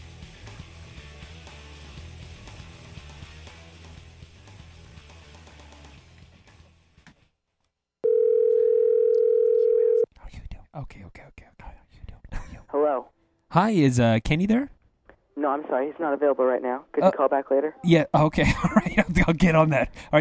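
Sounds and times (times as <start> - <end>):
music: 0.0 - 7.0
telephone dial tone while placing a call: 8.0 - 10.1
speech: 12.8 - 14.8, 15.5 - 20.2.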